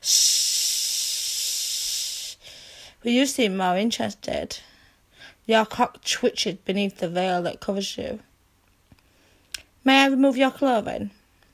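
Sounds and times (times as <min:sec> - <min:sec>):
snakes hissing: 0:00.0 - 0:02.7
speech: 0:03.0 - 0:04.7, 0:05.5 - 0:08.3, 0:09.8 - 0:11.2.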